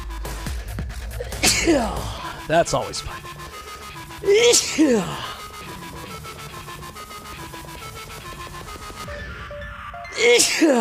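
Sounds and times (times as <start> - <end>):
loud sneezes: 1.2 - 2.3, 4.2 - 5.4, 10.2 - 10.7
speech: 1.6 - 3.3, 4.2 - 5.3, 10.2 - 10.7.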